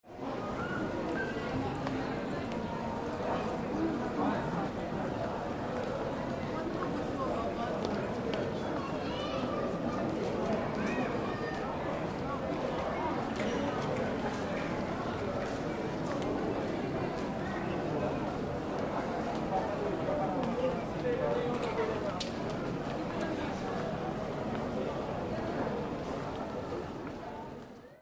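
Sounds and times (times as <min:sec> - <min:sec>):
light voices in an airport hall: 0:00.1 - 0:28.0
people passing by in an airport hall: 0:00.1 - 0:28.0.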